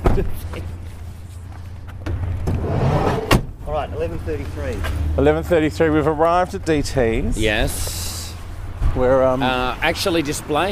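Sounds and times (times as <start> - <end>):
speech: 0.2 - 0.8, 4.0 - 8.0, 9.0 - 10.7
taxi door clicks and thumps as passenger gets out: 2.0 - 3.6.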